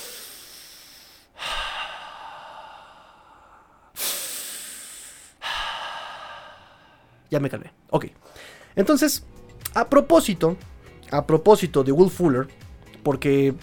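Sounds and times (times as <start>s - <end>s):
deep slow breathing to calm down: 0.0s - 7.3s, 8.2s - 8.8s
speech: 7.3s - 13.6s.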